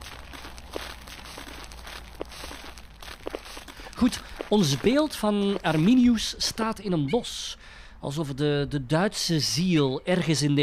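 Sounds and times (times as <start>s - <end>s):
tour group footsteps on a gritty surface in a forest: 0.0s - 6.5s
speech: 4.0s - 10.6s.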